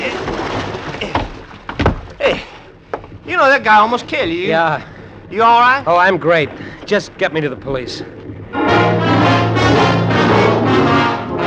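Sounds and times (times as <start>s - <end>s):
steady wash of water: 0.0s - 11.4s
thumps and knocks against a small fishing boat hull: 1.0s - 3.1s
speech: 3.4s - 8.2s.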